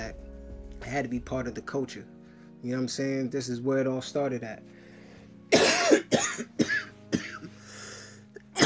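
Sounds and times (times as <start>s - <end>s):
speech: 0.9s - 4.8s
harsh raspy coughs: 5.5s - 7.6s, 8.5s - 8.6s.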